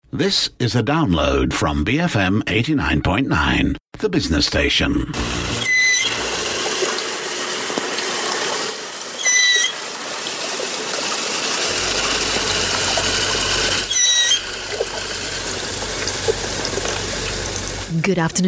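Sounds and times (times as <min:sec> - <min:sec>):
speech: 0:00.1 - 0:05.7, 0:18.0 - 0:18.4
steady hiss of water noise: 0:05.2 - 0:17.9
dugong calling underwater: 0:11.7 - 0:15.0.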